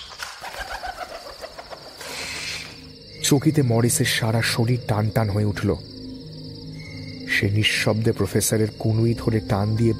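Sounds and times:
owl wings fluttering: 0:00.0 - 0:02.8
owl hooting overhead in pre-dawn darkness: 0:00.0 - 0:03.2
speech: 0:03.2 - 0:05.9, 0:07.4 - 0:09.9.

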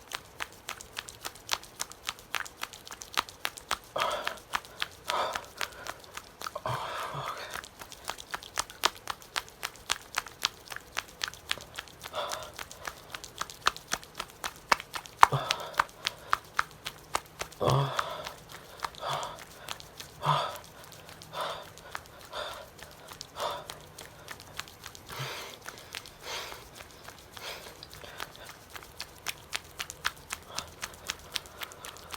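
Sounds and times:
sharp clicks and taps: 0:00.0 - 0:32.1
man breathing heavily: 0:04.0 - 0:07.6, 0:12.1 - 0:13.2, 0:15.2 - 0:16.6, 0:17.6 - 0:28.7.

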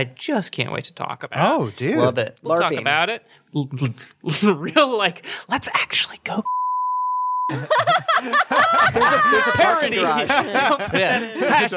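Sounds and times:
speech: 0:00.0 - 0:06.6, 0:07.5 - 0:11.7
censor bleep tone: 0:06.5 - 0:07.5
laughter: 0:07.5 - 0:11.7.

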